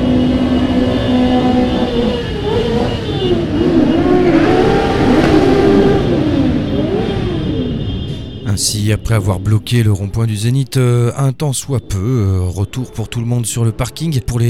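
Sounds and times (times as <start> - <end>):
crowd of motorcycles revving engines in Montpellier: 0.0 - 9.6
speech: 8.9 - 14.4.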